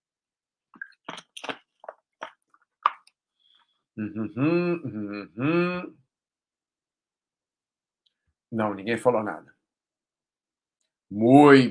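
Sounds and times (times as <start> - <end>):
soft gulping and swallowing while drinking water: 0.8 - 3.1
speech: 4.0 - 6.0, 8.5 - 9.5, 11.1 - 11.7.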